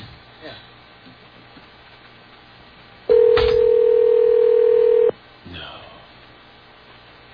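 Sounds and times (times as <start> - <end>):
long steady telephone ringback tone: 3.1 - 5.1.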